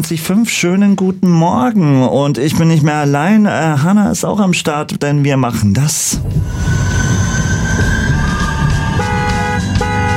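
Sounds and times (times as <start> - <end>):
speech: 0.0 - 8.0
tram rumbling along: 5.9 - 10.1
tram wheels letting out high metallic squeals: 7.1 - 10.1.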